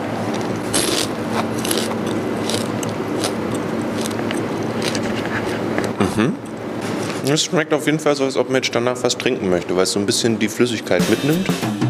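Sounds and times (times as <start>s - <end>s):
crunching while chewing a large beetle: 0.2s - 6.0s
speech: 6.0s - 6.4s, 7.2s - 11.7s.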